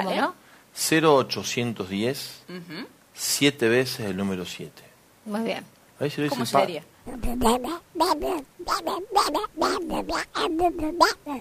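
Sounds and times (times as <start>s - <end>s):
speech: 0.0s - 11.4s
voice mimicking a duck while repeating a phone number: 6.4s - 11.4s.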